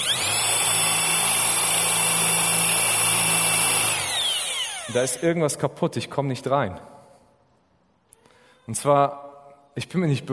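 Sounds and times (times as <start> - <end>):
power drill running at high speed: 0.0 - 5.2
speech: 4.9 - 6.9, 8.7 - 10.3.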